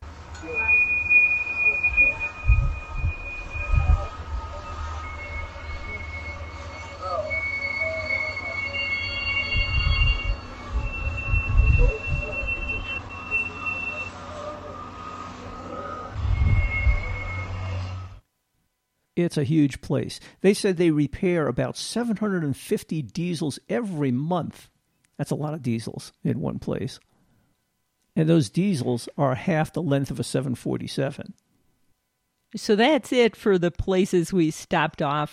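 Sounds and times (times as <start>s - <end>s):
deep rumble of rail cars in a busy rail yard: 0.0s - 18.2s
train wheels squealing in a rail yard: 0.1s - 18.2s
speech: 19.2s - 27.1s, 28.2s - 31.4s, 32.5s - 35.3s.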